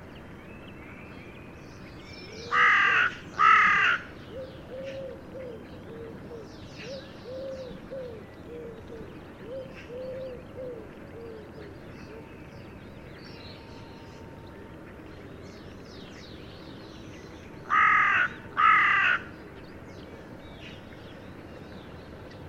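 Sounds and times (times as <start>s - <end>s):
Carrion crow Corvus corone cawing: 2.5s - 4.0s, 17.7s - 19.3s.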